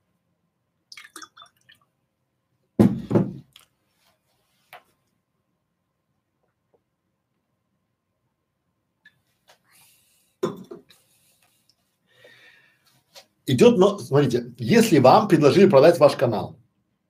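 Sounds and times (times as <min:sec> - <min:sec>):
water poured into a glass: 0:00.9 - 0:01.9
speech: 0:13.5 - 0:16.6.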